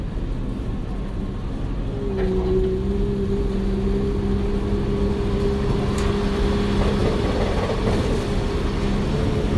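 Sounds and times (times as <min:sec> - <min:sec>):
tour tram rolling into a film set soundstage: 0:00.0 - 0:09.5
faint clanks and rattles: 0:05.8 - 0:08.4.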